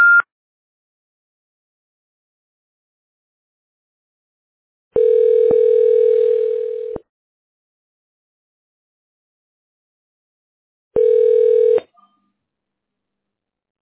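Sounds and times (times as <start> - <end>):
high beep: 0.0 - 0.2
continuous phone system tone: 5.0 - 7.0, 11.0 - 11.8.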